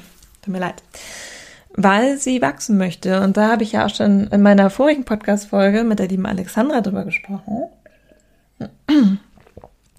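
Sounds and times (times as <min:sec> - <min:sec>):
speech: 0:00.4 - 0:01.1, 0:01.7 - 0:07.8, 0:08.6 - 0:09.2
loud rasping throat clearing with a falling tone: 0:08.6 - 0:09.3.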